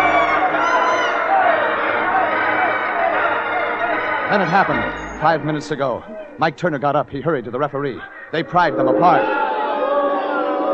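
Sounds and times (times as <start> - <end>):
crowd shouting and screaming: 0.0 - 5.2, 8.0 - 10.7
large crowd roaring and cheering: 0.0 - 6.4, 8.4 - 10.7
speech: 4.3 - 9.4.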